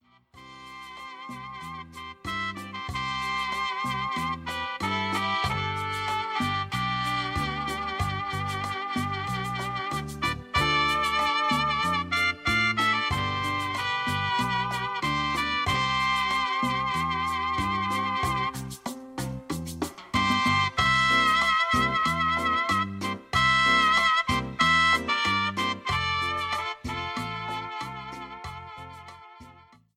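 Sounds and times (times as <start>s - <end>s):
tropical rhythm music: 0.4s - 29.9s.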